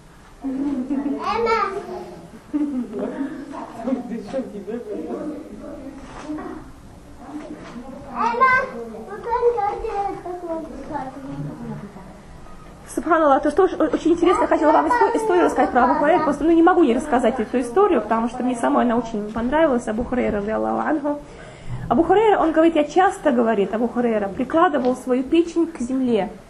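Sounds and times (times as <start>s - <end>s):
children chattering and squealing: 0.4s - 3.8s, 5.1s - 12.8s, 14.2s - 17.9s
speech: 0.4s - 6.6s, 13.0s - 26.4s.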